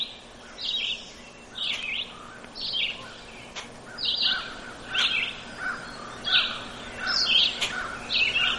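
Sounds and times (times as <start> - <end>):
red-eyed vireo singing short repeated phrases: 0.0 - 8.5
steady faint hum: 0.0 - 8.5.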